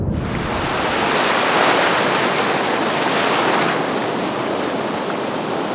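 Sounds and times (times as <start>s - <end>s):
submarine floating to the surface: 0.1s - 5.7s.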